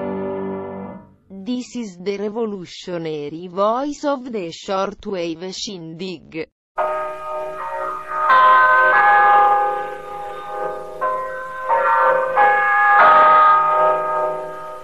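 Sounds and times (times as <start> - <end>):
speech: 1.7 - 7.3
radio time-signal chime with bell-like notes: 6.8 - 14.8.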